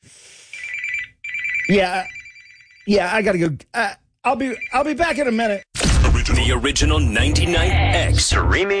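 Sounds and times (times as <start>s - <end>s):
telephone ringing with electronic trilling tone: 0.6s - 3.0s, 4.3s - 5.7s
speech: 1.7s - 2.2s, 2.9s - 5.7s, 6.3s - 8.7s.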